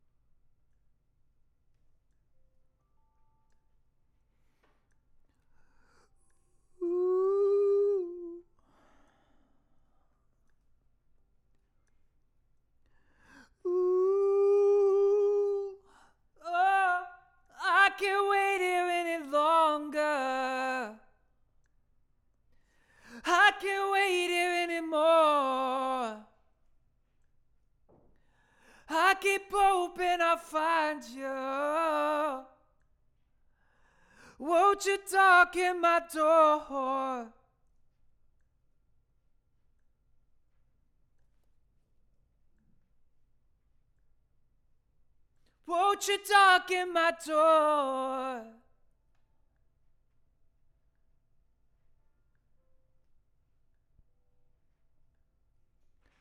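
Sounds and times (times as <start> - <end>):
vocals: 5.6 - 9.8, 12.9 - 21.3, 22.6 - 26.6, 28.1 - 32.9, 33.6 - 37.8, 45.5 - 48.9.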